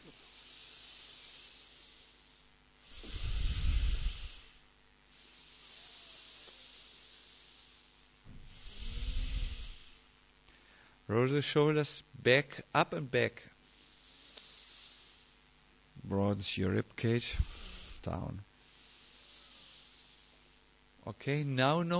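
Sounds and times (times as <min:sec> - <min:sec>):
slow breathing in and out during a relaxation exercise: 0:00.0 - 0:11.1, 0:13.6 - 0:15.5, 0:17.2 - 0:20.8
speech: 0:11.1 - 0:13.5, 0:16.1 - 0:18.5, 0:21.0 - 0:21.9.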